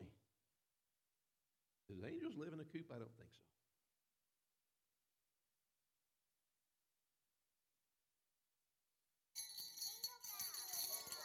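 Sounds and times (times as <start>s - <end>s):
speech: 1.9s - 3.6s
sleigh bells ringing: 9.4s - 11.2s.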